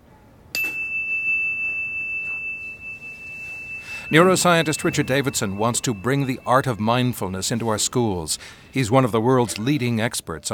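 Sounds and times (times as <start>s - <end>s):
single bell struck for a mindfulness listening exercise: 0.5s - 8.9s
speech: 4.1s - 10.5s.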